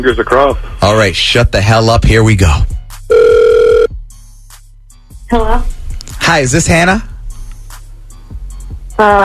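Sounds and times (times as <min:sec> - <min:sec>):
speech: 0:00.0 - 0:03.3, 0:05.3 - 0:05.7, 0:06.3 - 0:07.1, 0:09.0 - 0:09.2
ringback tone from an outgoing phone call: 0:03.1 - 0:04.0.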